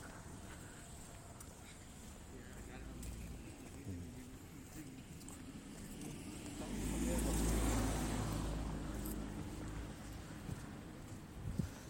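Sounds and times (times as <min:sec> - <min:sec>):
outdoor traffic rumble: 0:00.0 - 0:11.8
car passing by: 0:05.4 - 0:11.8.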